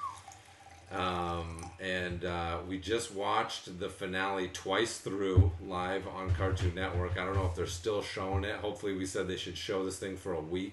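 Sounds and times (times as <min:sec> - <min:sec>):
Vermont whiskey being poured into a glass: 0:00.0 - 0:02.2
speech: 0:00.9 - 0:10.7.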